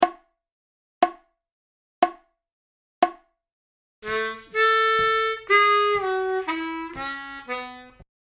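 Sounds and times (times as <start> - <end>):
country style twelve bar blues lick on harmonica: 4.0 - 8.0.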